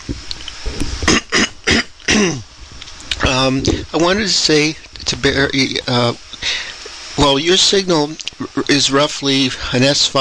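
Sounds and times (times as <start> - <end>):
throat clearing: 1.0 - 2.4
speech: 2.2 - 2.5, 3.4 - 6.6, 7.2 - 10.2.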